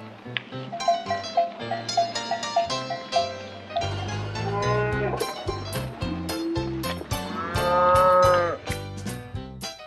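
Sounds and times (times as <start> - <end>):
busy rhythmic music with plucked bass notes: 0.8 - 9.8
cow mooing: 3.9 - 5.2, 7.2 - 8.6.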